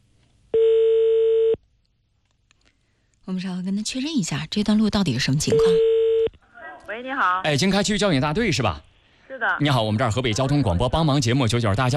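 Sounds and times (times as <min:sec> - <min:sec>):
telephone ringing tone: 0:00.6 - 0:01.6, 0:05.5 - 0:06.3
speech: 0:03.3 - 0:05.9, 0:07.0 - 0:11.9.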